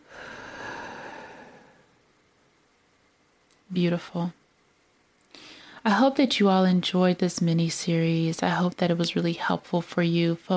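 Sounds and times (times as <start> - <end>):
deep breath in, held and released: 0.0 - 2.0, 5.3 - 5.8
speech: 3.7 - 4.4, 5.8 - 10.5.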